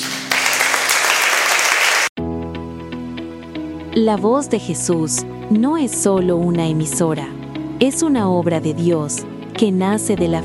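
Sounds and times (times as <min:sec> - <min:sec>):
crowd applauding: 0:00.0 - 0:02.2
speech: 0:04.0 - 0:10.4.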